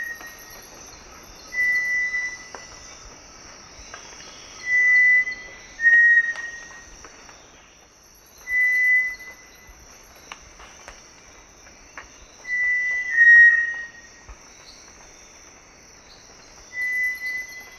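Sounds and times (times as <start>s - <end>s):
constant high insect drone: 0.0s - 17.7s
Cinereous tinamou giving pure steady whistles in the eastern lowlands of South America: 1.5s - 2.5s, 4.6s - 6.6s, 8.4s - 9.4s, 12.5s - 14.0s, 16.7s - 17.7s.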